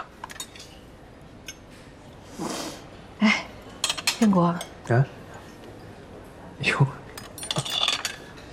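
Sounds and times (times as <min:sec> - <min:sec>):
knife and fork clinking and scraping on plates while cutting meat: 0:00.2 - 0:01.7, 0:03.7 - 0:04.8, 0:07.1 - 0:08.5.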